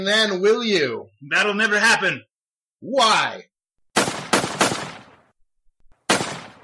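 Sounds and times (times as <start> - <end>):
speech: 0.0 - 3.5
gunshots in a comedy sketch: 3.9 - 5.3, 6.0 - 6.6.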